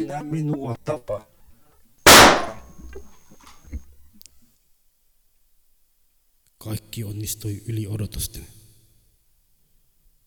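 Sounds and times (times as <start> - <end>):
speech: 0.1 - 1.3, 6.6 - 8.6
gunshot fired at a person: 2.1 - 2.7.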